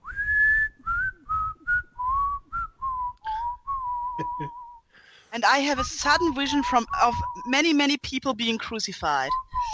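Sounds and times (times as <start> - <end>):
man whistling a cheerful tune: 0.0 - 4.9, 9.3 - 9.7
speech: 4.2 - 4.6, 5.3 - 9.7.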